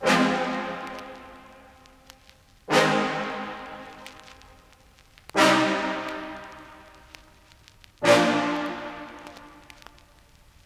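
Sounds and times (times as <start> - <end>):
classic brass melody loop in C minor: 0.0 - 1.7, 2.7 - 4.2, 5.4 - 7.2, 8.0 - 9.9.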